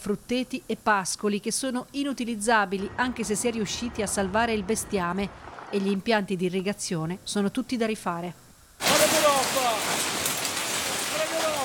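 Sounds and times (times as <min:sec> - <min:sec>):
speech: 0:00.0 - 0:08.4
violent hailstorm with icy stones striking surfaces: 0:08.8 - 0:11.6.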